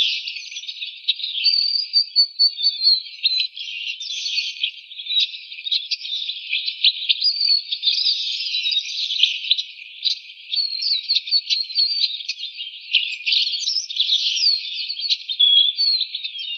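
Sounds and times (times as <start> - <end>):
Chestnut-capped blackbird Chrysomus ruficapillus male calling: 0.1 - 16.5.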